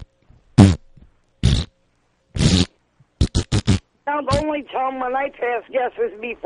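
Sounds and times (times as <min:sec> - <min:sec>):
voice imitating fart sounds made while doing crunches: 0:00.6 - 0:00.8, 0:01.4 - 0:01.7, 0:02.4 - 0:04.4
speech: 0:04.1 - 0:06.4.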